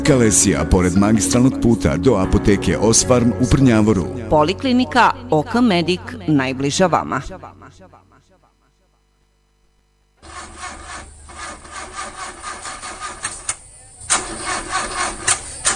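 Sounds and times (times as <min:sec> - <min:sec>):
speech: 0:00.0 - 0:08.1
old car engine cranking without catching: 0:10.2 - 0:15.7.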